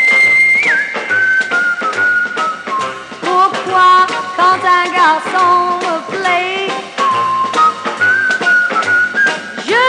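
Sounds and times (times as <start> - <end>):
wolf whistle aimed at a boy: 0.0 - 3.3, 7.0 - 9.8
speech: 4.5 - 6.7.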